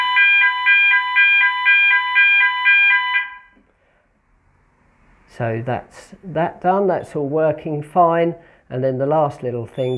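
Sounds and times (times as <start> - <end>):
fire alarm sounder pulsing with harsh electronic tones: 0.0 - 3.6, 9.8 - 9.9
speech: 5.4 - 9.9.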